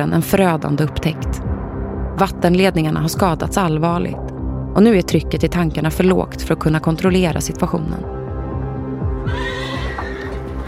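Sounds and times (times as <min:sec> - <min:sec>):
speech: 0:00.0 - 0:01.5, 0:02.2 - 0:08.2
horse neighing as horses are harnessed to wagons: 0:09.2 - 0:10.6.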